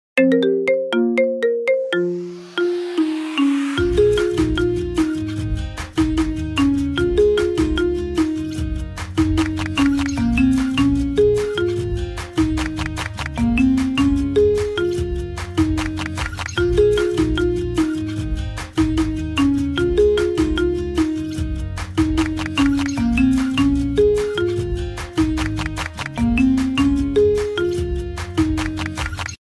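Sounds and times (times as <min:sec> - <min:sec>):
marimba remix: 0:00.2 - 0:29.4.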